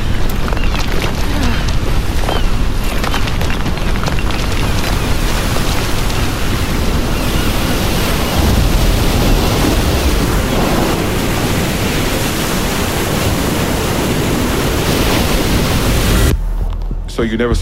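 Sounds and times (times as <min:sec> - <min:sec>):
massive rogue wave crashing: 0:00.0 - 0:16.3
howling wind: 0:00.0 - 0:16.8
speech: 0:17.2 - 0:17.5.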